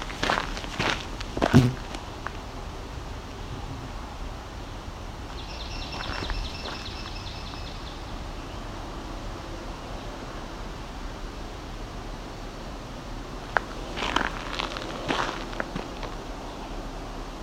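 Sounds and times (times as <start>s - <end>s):
steady outdoor hiss: 0.0s - 17.4s
swamp sparrow singing a trill: 5.3s - 8.1s.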